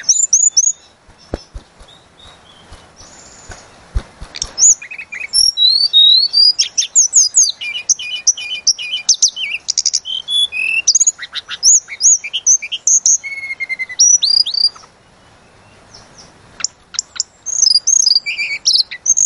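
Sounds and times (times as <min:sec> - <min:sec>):
Sunda robin song of varied chirps and whistled slurs: 0:00.0 - 0:19.2.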